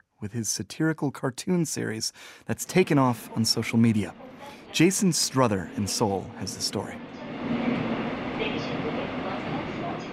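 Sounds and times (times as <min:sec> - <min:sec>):
speech: 0:00.2 - 0:07.7
interior rumble of a moving subway train: 0:02.7 - 0:10.1.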